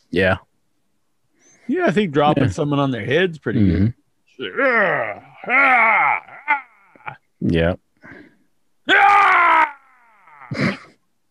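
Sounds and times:
speech: 0.1s - 0.5s, 1.7s - 6.6s, 7.4s - 8.2s, 10.5s - 10.8s
man yelling in rage: 4.4s - 7.2s, 8.9s - 10.6s
man's short rough grunt: 4.4s - 7.2s, 8.9s - 10.9s.

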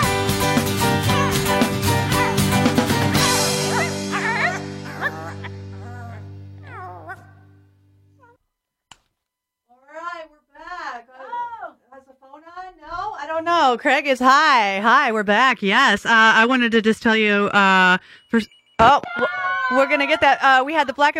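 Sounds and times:
high-pitched vocal sounds: 0.0s - 7.3s
rock song ending on a sustained chord: 0.0s - 7.4s
speech: 13.7s - 21.1s.

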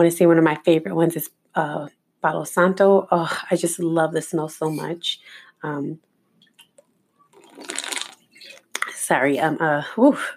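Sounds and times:
speech: 0.0s - 6.1s, 9.1s - 10.3s
person drinking water with gulping swallows: 7.3s - 8.8s.

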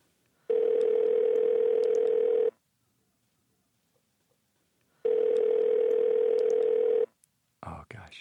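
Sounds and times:
telephone ringback tone during an outgoing call: 0.5s - 2.6s, 5.0s - 7.1s.

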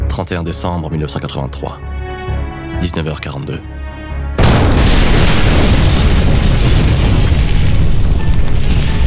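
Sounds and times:
speech: 0.2s - 1.9s, 2.8s - 4.1s
bomb blast: 4.4s - 9.0s
rumbling roar of debris and low booming: 4.4s - 9.0s.

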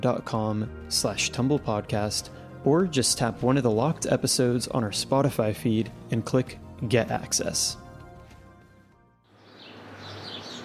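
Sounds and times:
speech: 0.0s - 7.8s
birds chirping and twittering outdoors: 9.3s - 10.6s.

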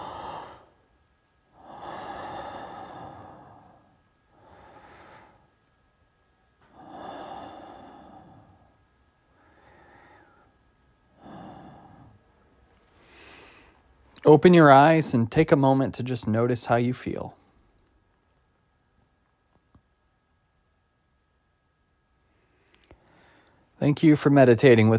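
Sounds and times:
slow deep breaths closing a meditation: 0.0s - 5.8s, 6.6s - 14.0s, 22.2s - 23.8s
speech: 14.2s - 17.4s, 23.8s - 24.9s.

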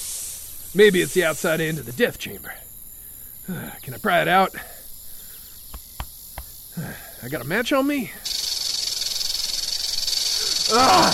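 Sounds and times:
diamondback rattlesnakes rattling and hissing: 0.0s - 11.1s
speech: 0.7s - 2.7s, 3.5s - 4.7s, 6.8s - 8.5s, 10.7s - 11.1s.

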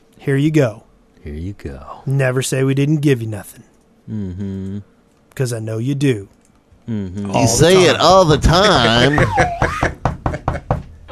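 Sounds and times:
speech: 0.2s - 10.0s
laughter: 7.4s - 10.8s
firm knocking on a door: 9.0s - 10.9s.

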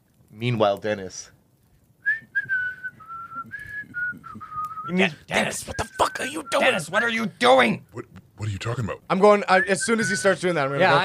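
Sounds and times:
speech: 0.4s - 1.4s, 4.9s - 11.0s
person whistling a short tune: 2.0s - 5.0s, 5.7s - 6.8s, 9.6s - 10.4s.

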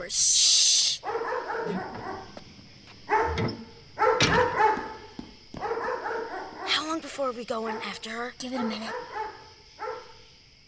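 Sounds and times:
speech: 0.1s - 0.4s, 7.2s - 9.2s
dog barking and yipping: 1.0s - 6.9s, 7.6s - 10.2s.

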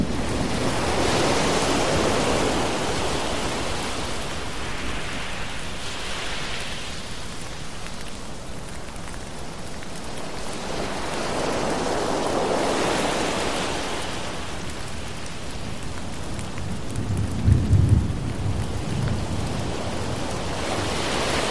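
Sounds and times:
ocean waves surging: 0.0s - 8.4s, 9.0s - 16.5s, 19.2s - 21.5s
rushing rain: 0.0s - 21.5s.

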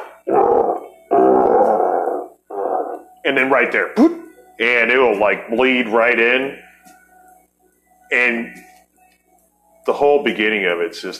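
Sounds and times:
lion roaring in film studio logo: 0.0s - 3.0s
speech: 3.3s - 6.6s, 8.1s - 8.7s, 9.8s - 11.1s.

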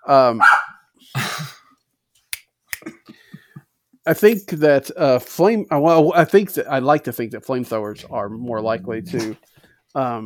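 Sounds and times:
speech: 0.1s - 1.4s, 4.0s - 10.2s
dog barks: 0.4s - 0.8s.

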